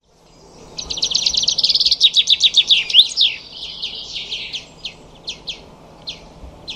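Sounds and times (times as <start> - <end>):
bird trilling and chirping: 0.1 - 6.7.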